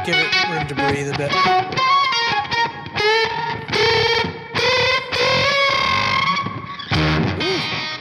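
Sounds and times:
speech: 0.0s - 2.0s
heavily distorted electric guitar through an effects pedal: 0.0s - 7.9s.

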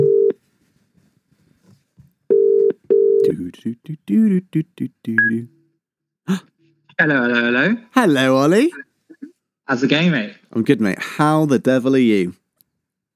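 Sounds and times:
telephone ringback tones over the line: 0.0s - 0.4s, 2.3s - 3.2s
person answering and speaking on telephone: 3.2s - 5.6s, 8.0s - 8.9s
speech: 3.6s - 5.6s, 6.3s - 8.8s, 9.7s - 12.4s.

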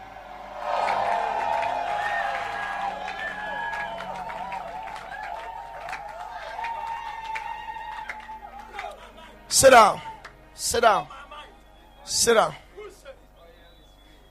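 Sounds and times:
crowd clapping: 0.0s - 9.3s, 10.2s - 10.4s
speech: 9.6s - 11.2s, 12.1s - 12.6s.

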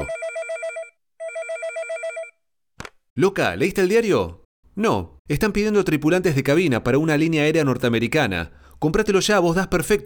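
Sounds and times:
telephone ringing in warbling electronic trills: 0.0s - 2.4s
speech: 3.2s - 10.0s.

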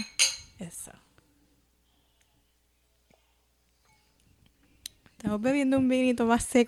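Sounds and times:
wine glasses clinking in a toast: 0.0s - 0.6s
speech: 5.3s - 6.6s.

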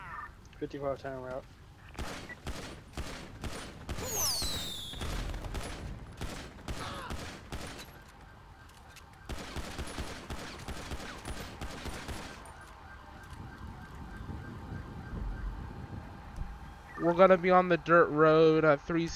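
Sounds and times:
speech: 0.6s - 2.1s, 17.1s - 19.1s
gunfire during a shootout with suspects: 2.0s - 8.0s, 9.3s - 12.5s.

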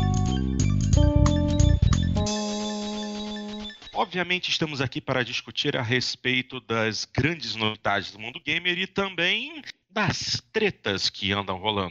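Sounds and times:
electronic music with bright sustained synth tones: 0.0s - 4.0s
speech: 4.0s - 11.8s.

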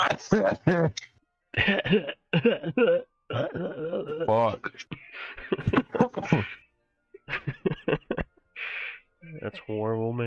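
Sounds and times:
laughter: 0.0s - 1.0s, 1.6s - 2.8s, 3.5s - 6.6s, 7.2s - 8.5s
speech: 0.0s - 6.6s, 7.3s - 8.3s, 9.2s - 10.2s
harsh voiced coughing: 1.6s - 6.6s.

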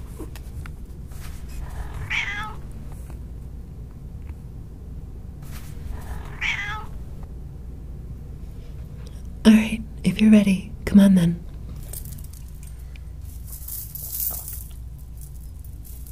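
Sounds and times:
steady low hum: 0.0s - 16.0s
cat meowing: 1.6s - 2.7s, 6.0s - 7.1s
speech: 9.5s - 11.4s.

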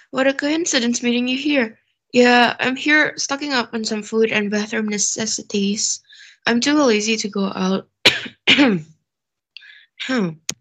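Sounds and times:
speech: 0.1s - 8.9s, 10.0s - 10.5s
person with an itchy throat coughing: 8.1s - 8.9s.

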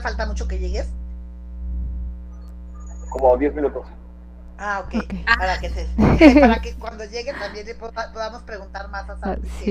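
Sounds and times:
speech: 0.0s - 1.0s, 3.1s - 4.0s, 4.6s - 9.6s
low electrical interference hum with harmonic buzz on call audio: 0.0s - 9.6s
laughter: 5.8s - 8.0s.

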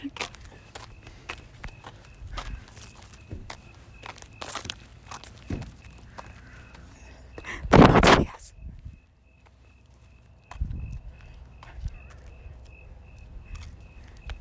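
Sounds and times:
footsteps of people walking: 0.0s - 8.1s, 8.7s - 14.4s
faint steady tone: 0.0s - 14.4s.

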